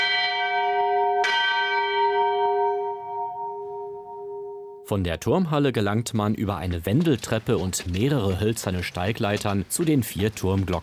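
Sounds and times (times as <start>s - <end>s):
church bell hanging in a tower hall rung on feast days: 0.0s - 4.9s
speech: 4.9s - 10.8s.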